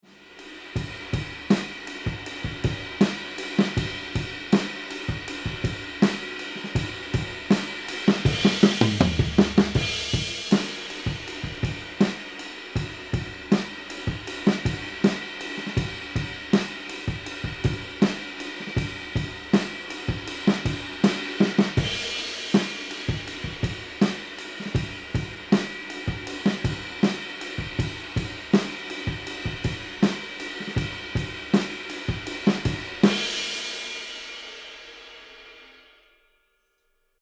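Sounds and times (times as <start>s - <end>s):
drums recorded with echo microphone in room: 0.0s - 36.1s.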